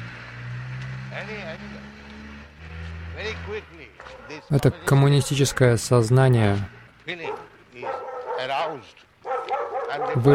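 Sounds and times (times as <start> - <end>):
speech: 1.2 - 2.0, 3.2 - 9.1, 9.9 - 10.3
dog barking and yelping in a neighbouring yard: 4.0 - 4.5, 7.2 - 10.3.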